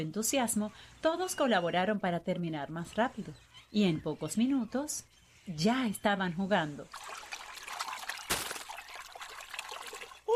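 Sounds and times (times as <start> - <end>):
speech: 0.0 - 7.2
sea water splashing: 6.9 - 10.3.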